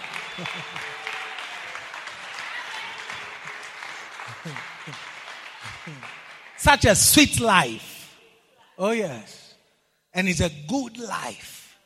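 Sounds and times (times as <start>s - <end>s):
laughter: 0.0s - 1.0s, 3.2s - 6.2s
congregation clapping during a church service: 0.0s - 8.1s
speech: 0.4s - 1.1s, 4.4s - 5.1s, 5.8s - 7.9s, 8.8s - 9.4s, 10.1s - 11.6s.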